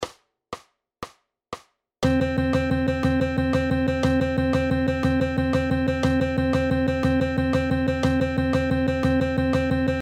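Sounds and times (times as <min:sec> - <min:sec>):
eighth-note triplets: 0:02.0 - 0:10.0.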